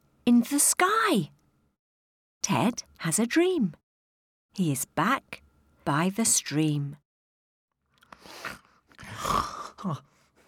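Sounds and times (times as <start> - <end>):
speech: 0.3 - 1.4, 2.4 - 3.8, 4.6 - 7.0, 8.3 - 10.1
voice imitating the loud snore of someone waking up: 9.0 - 10.0.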